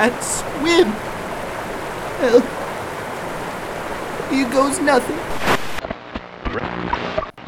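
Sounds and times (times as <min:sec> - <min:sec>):
speech: 0:00.0 - 0:01.1, 0:02.2 - 0:02.6, 0:04.3 - 0:05.5, 0:06.5 - 0:07.3
rushing waterfall: 0:00.0 - 0:05.8.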